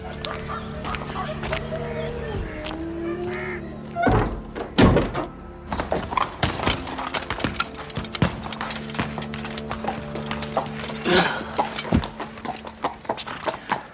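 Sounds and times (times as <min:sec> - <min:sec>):
faint tonal sounds: 0:00.0 - 0:13.9
door shut with heavy solid thuds: 0:04.0 - 0:07.6.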